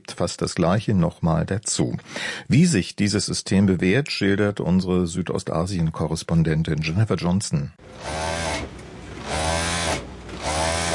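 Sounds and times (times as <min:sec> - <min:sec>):
speech: 0:00.2 - 0:08.7
sewing machine motor whirring: 0:07.8 - 0:10.9.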